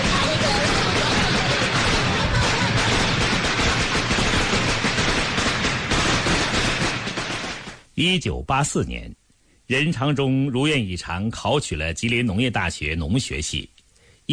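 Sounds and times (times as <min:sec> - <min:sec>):
string of firecrackers bursting: 0:00.0 - 0:07.9
speech: 0:08.0 - 0:13.7.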